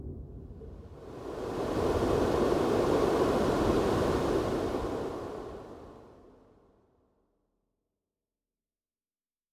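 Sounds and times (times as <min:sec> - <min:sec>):
wind: 0:00.9 - 0:06.2.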